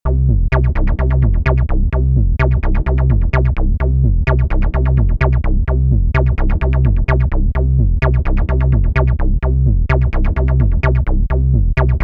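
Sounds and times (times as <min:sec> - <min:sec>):
sub bass groove: 0:00.0 - 0:12.0.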